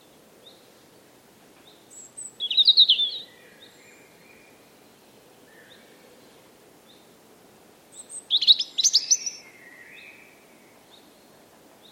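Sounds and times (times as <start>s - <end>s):
faint low background noise: 0.0s - 11.9s
European robin song phrase: 1.6s - 4.6s, 7.9s - 11.9s.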